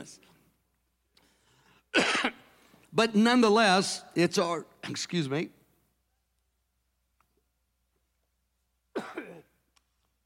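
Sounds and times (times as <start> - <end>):
speech: 0.0 - 0.3, 2.0 - 5.6
person coughing in short raspy bursts: 1.9 - 2.5, 8.9 - 9.6.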